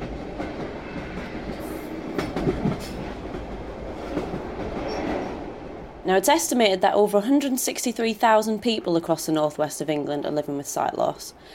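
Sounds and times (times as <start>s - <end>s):
clattering train wheel clicks: 0.0s - 5.7s
train rolling along the rails: 0.0s - 11.4s
speech: 6.1s - 11.5s.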